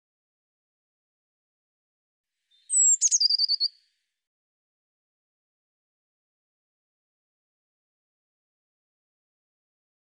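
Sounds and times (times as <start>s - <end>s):
Eurasian blue tit calling: 2.5s - 3.8s.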